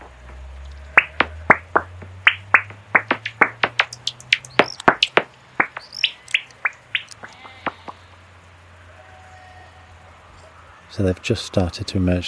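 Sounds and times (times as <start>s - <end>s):
Noctule bat echolocation clicks on a bat detector at twilight in Wiltshire: 1.0s - 7.9s
speech: 11.0s - 12.2s.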